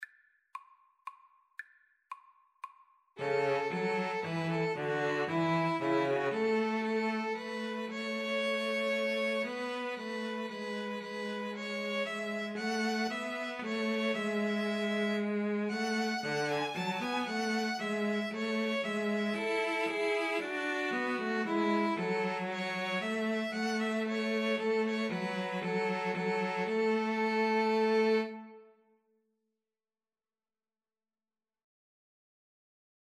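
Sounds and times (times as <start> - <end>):
string trio playing: 3.2 - 28.6.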